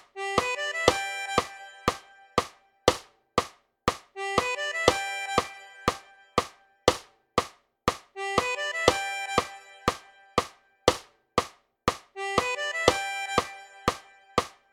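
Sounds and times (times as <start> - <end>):
juke music riff: 0.1 - 3.0, 4.1 - 7.0, 8.1 - 11.0, 12.1 - 14.7.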